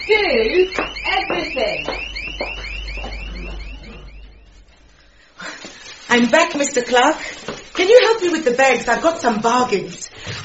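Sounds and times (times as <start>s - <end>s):
panic alarm wailing with a fast electronic sweep: 0.0s - 5.5s
speech: 6.2s - 10.4s.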